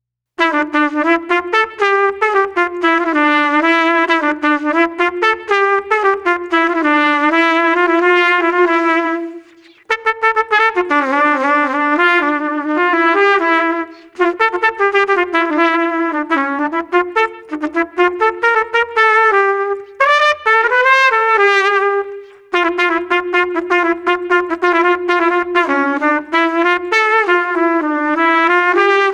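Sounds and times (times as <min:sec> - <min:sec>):
jazz trumpet melody: 0:00.4 - 0:29.1.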